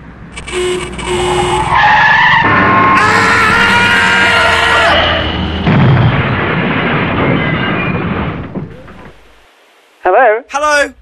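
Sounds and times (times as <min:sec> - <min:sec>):
bus tyres screeching as a bus skids: 0:00.4 - 0:06.4
crunching rumbling crash of a bus hitting a person: 0:00.5 - 0:09.4.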